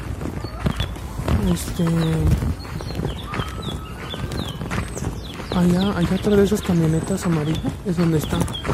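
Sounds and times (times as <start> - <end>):
knocking clopping sounds: 0.0 - 8.7
small birds chirping outdoors: 0.0 - 8.7
speech: 1.5 - 2.6, 5.6 - 8.7.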